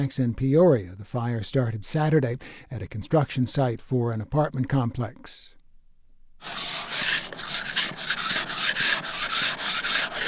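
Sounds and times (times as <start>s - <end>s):
speech: 0.0s - 5.6s, 6.4s - 6.8s
ice scraped off a car windshield in a Colorado winter: 6.4s - 10.2s.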